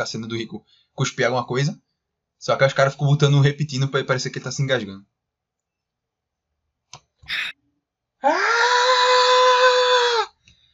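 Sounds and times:
speech: 0.0 - 1.8, 2.4 - 5.1, 6.9 - 7.6, 8.2 - 8.8
quick click: 6.9 - 7.1
drawn-out cartoon cat scream sound effect: 8.2 - 10.4.

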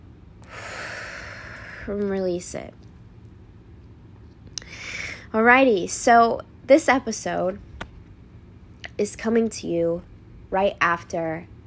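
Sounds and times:
deep breath drawn into the belly: 0.4 - 1.9, 4.6 - 5.3
speech: 1.8 - 2.9, 5.3 - 7.7, 9.0 - 11.5.

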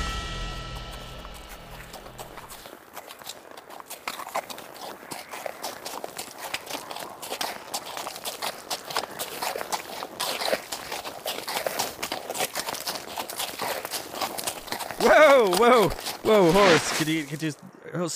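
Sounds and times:
low droning hum: 0.0 - 2.6
horse hooves clip-clopping in a walking rhythm: 1.9 - 16.4
speech: 15.4 - 18.1.

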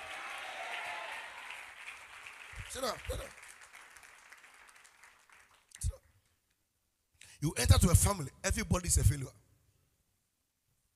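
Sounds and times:
crowd clapping hands in applause: 0.0 - 5.9
speech: 2.7 - 3.5, 7.4 - 9.4.

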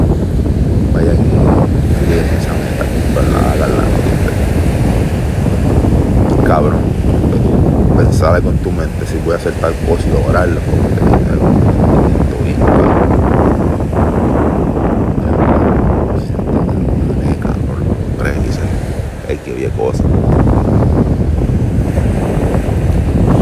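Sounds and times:
gusting wind buffeting the microphone: 0.0 - 23.4
loud roar of ocean surf: 0.0 - 23.4
speech: 8.7 - 13.0.

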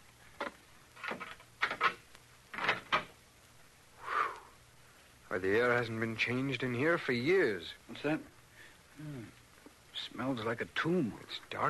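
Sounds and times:
door being opened: 0.4 - 3.1
speech: 5.4 - 8.4, 9.0 - 9.4, 10.0 - 11.6.

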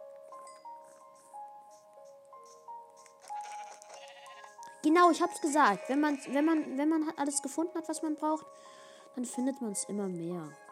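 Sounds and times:
steady quiet video game music: 0.0 - 10.7
two sheep bleating in a video game: 3.4 - 4.7, 5.4 - 7.0
speech: 4.8 - 10.6.

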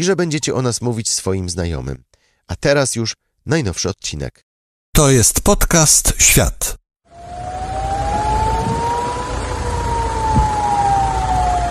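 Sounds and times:
speech: 0.0 - 7.5
air raid warning siren wailing: 7.1 - 11.6.

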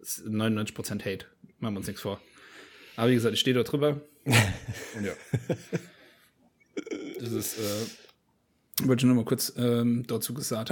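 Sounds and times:
speech: 0.0 - 2.4, 3.0 - 5.9, 6.8 - 8.1, 8.8 - 10.7
laughter: 4.3 - 5.9
person clearing throat: 6.8 - 7.9.

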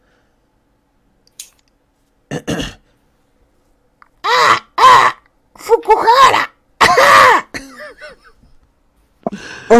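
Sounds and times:
throaty cough-like sound: 2.3 - 2.9, 6.8 - 8.3
voice imitating a crow's shriek: 4.2 - 6.6.

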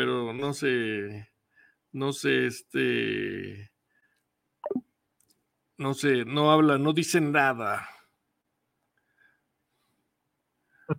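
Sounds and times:
speech: 0.0 - 1.3, 1.9 - 3.7, 5.8 - 8.0
wet plopping sound in a kitchen over a phone line: 4.6 - 4.8.

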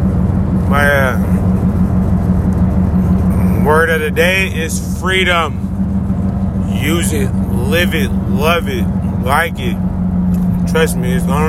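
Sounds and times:
car interior engine and road drone: 0.0 - 11.4
speech: 0.7 - 1.3, 3.8 - 5.6, 6.8 - 9.9, 10.7 - 11.4.

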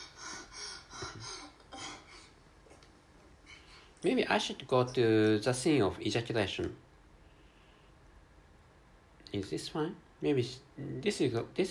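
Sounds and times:
woman breathing heavily and raspily: 0.0 - 2.5, 3.4 - 4.0
speech: 4.0 - 6.9, 9.4 - 11.7.

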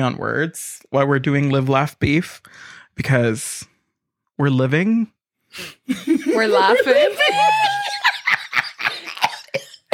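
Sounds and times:
speech: 0.0 - 3.7, 4.4 - 8.0
laughter: 5.9 - 9.6
harsh coughs: 8.9 - 9.9.

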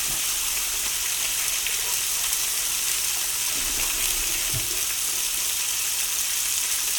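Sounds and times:
salted and peppered meat searing in a very hot, lightly oiled frying pan: 0.0 - 6.9.

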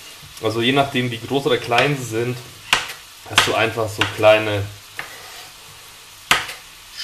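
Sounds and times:
speech: 0.2 - 2.6, 3.3 - 4.8
knife roughly chopping mushrooms on a cutting board: 2.7 - 4.2, 6.3 - 6.6.

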